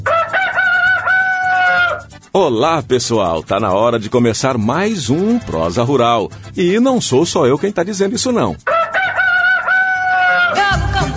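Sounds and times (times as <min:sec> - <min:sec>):
rooster crowing: 0:00.0 - 0:02.1, 0:08.7 - 0:10.8
speech: 0:02.3 - 0:08.7.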